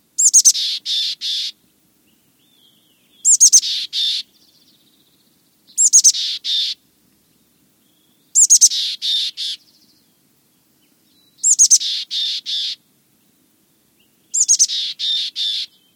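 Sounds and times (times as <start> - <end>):
mountain chickadee calling: 0.2 - 1.6, 2.4 - 5.0, 5.7 - 6.8, 7.9 - 10.0, 10.8 - 12.8, 14.0 - 15.9.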